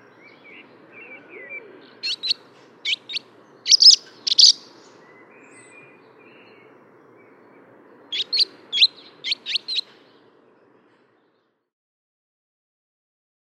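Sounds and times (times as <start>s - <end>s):
barn swallow chirping: 1.5s - 4.8s, 8.1s - 9.9s.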